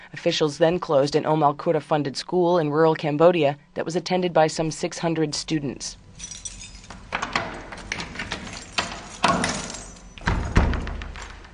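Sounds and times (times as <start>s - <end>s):
speech: 0.1s - 6.3s
office door thudding as it swings open: 7.1s - 11.5s.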